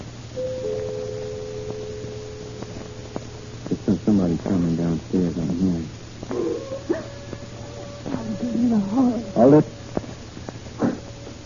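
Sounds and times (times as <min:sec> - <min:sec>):
low hum: 0:00.0 - 0:11.4
doorbell buzzing: 0:00.4 - 0:04.0, 0:06.3 - 0:10.1
speech: 0:04.4 - 0:06.0, 0:09.5 - 0:09.7.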